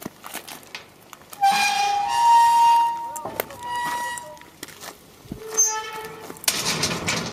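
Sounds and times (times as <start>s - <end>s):
gates creaking and closing in Saivres: 1.3s - 4.5s, 5.3s - 7.3s.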